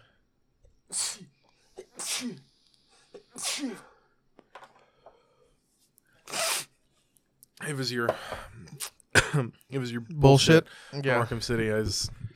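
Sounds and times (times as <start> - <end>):
person sneezing: 0.9 - 4.0, 6.3 - 6.7
speech: 2.2 - 2.5, 7.7 - 12.2.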